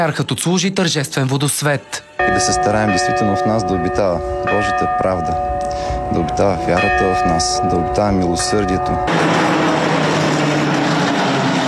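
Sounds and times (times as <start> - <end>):
speech: 0.0 - 9.7
retro tram rolling rumble on city streets of Sofia: 6.1 - 11.6.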